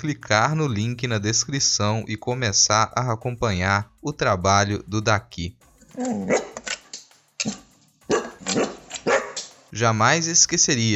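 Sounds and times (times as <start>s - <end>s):
speech: 0.0s - 6.5s, 9.8s - 10.9s
dog barking: 6.0s - 6.6s, 7.4s - 9.5s.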